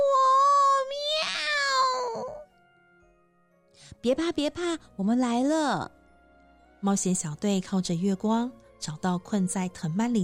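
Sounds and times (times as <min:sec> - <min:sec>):
person imitating a kitten meowing for help: 0:00.0 - 0:02.4
speech: 0:04.0 - 0:06.0, 0:06.8 - 0:10.2.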